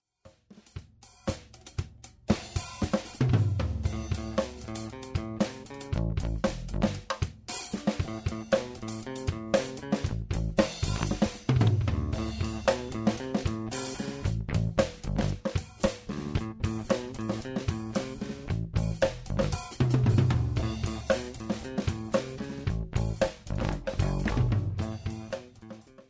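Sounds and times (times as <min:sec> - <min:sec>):
bass played with a pick: 0:03.2 - 0:26.0.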